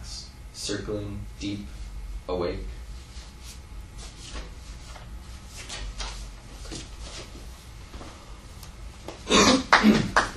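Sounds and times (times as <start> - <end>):
speech: 0.7 - 2.8
faint shuffling noise: 1.5 - 8.5
throat clearing during a reading: 9.2 - 10.2.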